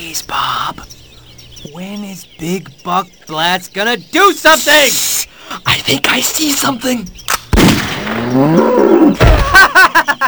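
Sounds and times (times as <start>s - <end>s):
speech: 0.0s - 0.9s, 1.6s - 7.2s, 8.3s - 10.2s
hunter's gunshot bang: 7.5s - 8.4s, 9.2s - 9.6s
cow bellowing after being shot: 8.1s - 9.3s
cow mooing: 8.2s - 9.2s
laughter: 9.2s - 10.2s.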